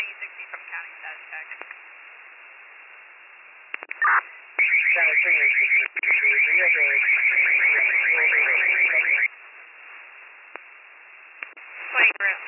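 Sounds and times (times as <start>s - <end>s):
voices: 0.0s - 1.8s, 4.0s - 9.3s, 11.8s - 12.4s
speech: 0.8s - 1.9s, 5.2s - 9.3s
building alarm blaring in rapid pulses over a radio: 4.6s - 9.3s.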